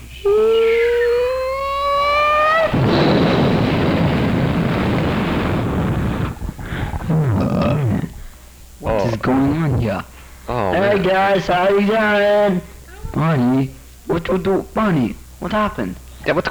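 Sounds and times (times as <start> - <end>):
long whistling tone of a burning airplane coming down: 0.0 - 6.6
loud sustained roaring rumble of a burning airplane coming down: 0.0 - 10.8
speech: 9.3 - 10.2, 10.8 - 16.4.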